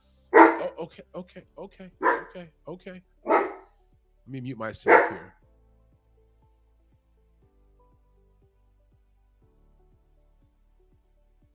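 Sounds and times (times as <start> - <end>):
dogs barking: 0.4 - 0.8, 2.0 - 2.4, 3.3 - 3.6, 4.8 - 5.3
speech: 0.6 - 3.5, 4.2 - 5.4.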